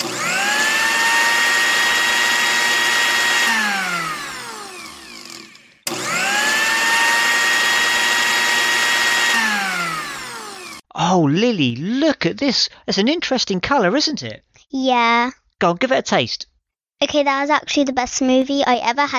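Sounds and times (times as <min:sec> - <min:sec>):
new blender whirring while blending oranges and coconut milk: 0:00.0 - 0:10.9
speech: 0:11.4 - 0:19.1.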